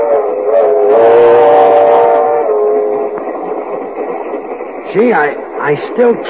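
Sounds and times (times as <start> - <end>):
passenger train whistle sounding a long chord: 0.0 - 3.5
moving passenger train rumbling: 0.0 - 6.2
speech: 5.0 - 6.2.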